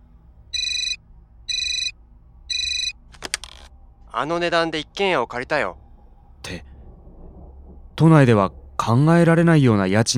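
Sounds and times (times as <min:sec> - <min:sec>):
telephone ringing with a bright electronic trill: 0:00.6 - 0:01.9, 0:02.5 - 0:03.0
speech: 0:04.2 - 0:05.8, 0:06.4 - 0:06.7, 0:08.0 - 0:10.1.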